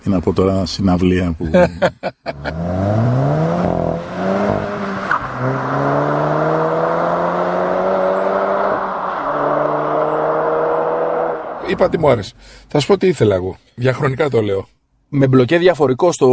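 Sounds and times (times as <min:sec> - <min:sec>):
speech: 0:00.0 - 0:03.0, 0:11.7 - 0:16.3
laughter: 0:01.4 - 0:02.6
Golf GTI engine revving past 3000 rpm: 0:02.3 - 0:12.2.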